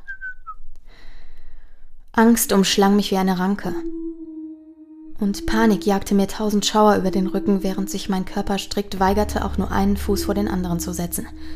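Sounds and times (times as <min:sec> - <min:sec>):
person whistling a short bright tune: 0:00.0 - 0:00.6, 0:03.7 - 0:08.1
speech: 0:02.2 - 0:04.0, 0:05.2 - 0:11.5.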